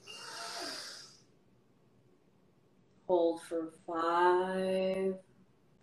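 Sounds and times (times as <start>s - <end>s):
deep breath in through the nose during a guided relaxation breathing exercise: 0.0s - 1.2s
speech: 3.1s - 5.3s.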